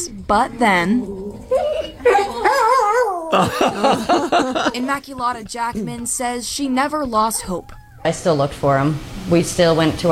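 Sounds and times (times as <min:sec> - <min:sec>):
speech: 0:00.2 - 0:01.2, 0:03.3 - 0:10.0
dog yipping and whimpering excitedly on reunion with owner: 0:00.6 - 0:03.4, 0:07.4 - 0:08.1
dog yelping sharply: 0:01.0 - 0:03.4, 0:07.4 - 0:08.1
laughter: 0:01.5 - 0:06.1.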